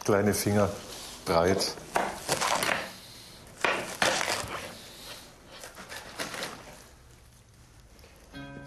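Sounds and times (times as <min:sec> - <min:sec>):
speech: 0:00.0 - 0:02.4
knife cutting radicchio into strips: 0:03.6 - 0:04.9, 0:05.5 - 0:06.9.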